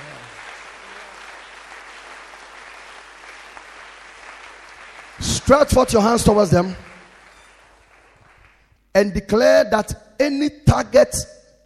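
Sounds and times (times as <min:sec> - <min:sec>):
crowd of people clapping their hands: 0:00.0 - 0:08.9
speech: 0:05.4 - 0:06.9, 0:09.0 - 0:11.4.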